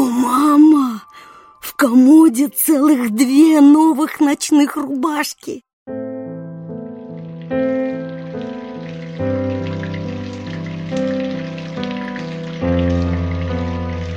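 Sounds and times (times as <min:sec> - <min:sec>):
speech: 0:01.8 - 0:06.0
steady rain pattering: 0:06.8 - 0:14.1.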